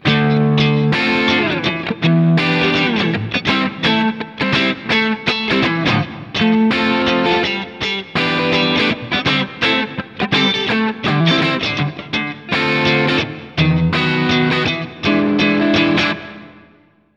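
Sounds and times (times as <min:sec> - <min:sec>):
groove guitars: 0:00.0 - 0:16.9.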